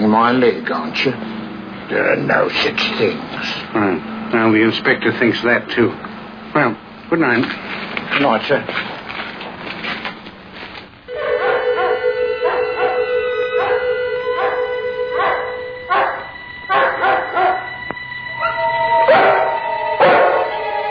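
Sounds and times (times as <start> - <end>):
speech: 0.1 - 8.9
several dogs howling together: 11.1 - 20.8.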